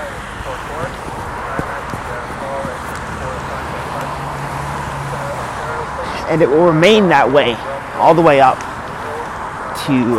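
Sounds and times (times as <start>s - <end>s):
indistinct voices: 0.0s - 10.1s
street traffic passing near a subway station: 0.0s - 10.1s
small scuffing sounds: 0.7s - 4.3s
speech: 6.3s - 8.7s, 9.8s - 10.1s.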